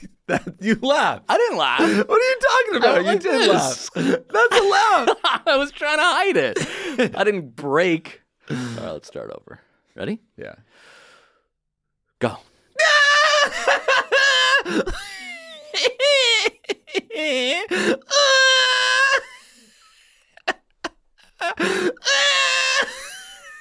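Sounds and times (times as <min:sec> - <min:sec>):
laughter: 0:00.0 - 0:07.3, 0:12.8 - 0:23.5
speech: 0:00.3 - 0:10.9, 0:12.2 - 0:14.0, 0:14.6 - 0:15.2, 0:15.8 - 0:19.3, 0:21.4 - 0:23.0
person screaming during a game of trying to make the other person laugh: 0:01.6 - 0:05.2, 0:12.8 - 0:14.9, 0:15.7 - 0:19.3, 0:21.4 - 0:23.1.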